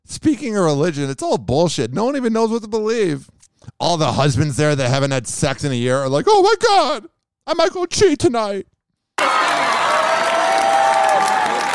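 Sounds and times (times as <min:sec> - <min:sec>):
speech: 0:00.1 - 0:09.4
crowd clapping and cheering: 0:09.2 - 0:11.7.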